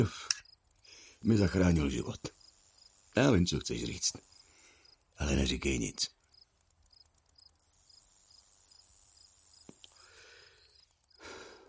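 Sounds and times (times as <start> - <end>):
speech: 0.0 - 0.3, 1.2 - 2.4, 3.2 - 4.3, 5.2 - 6.2
crickets chirping in woodland at night: 0.0 - 11.6
high insect drone: 0.0 - 11.6.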